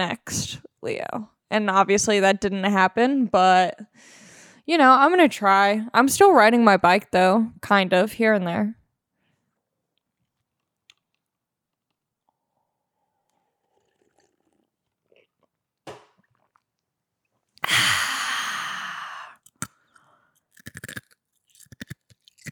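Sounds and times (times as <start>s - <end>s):
speech: 0.0s - 8.8s
ice being chewed: 10.0s - 17.7s, 19.3s - 22.5s
breathy exhale: 17.6s - 20.3s.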